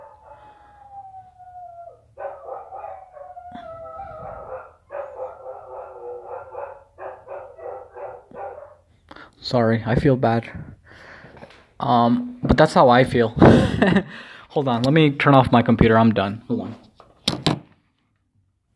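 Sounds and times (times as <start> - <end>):
dog whining and howling mournfully: 0.0 - 8.8
speech: 9.4 - 10.7, 11.8 - 16.6.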